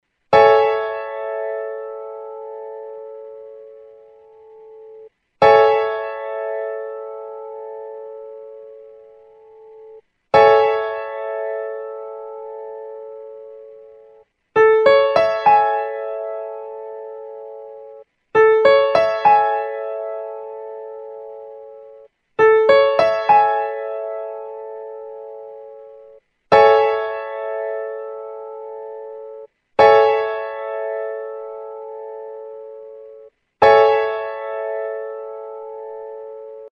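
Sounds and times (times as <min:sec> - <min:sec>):
A major seventh piano chord: 0:00.3 - 0:36.7.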